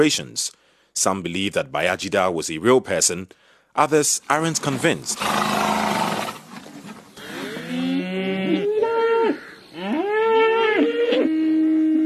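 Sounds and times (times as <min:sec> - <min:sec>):
speech: 0:00.0 - 0:05.7
bulls mooing: 0:05.2 - 0:06.4, 0:07.2 - 0:11.6.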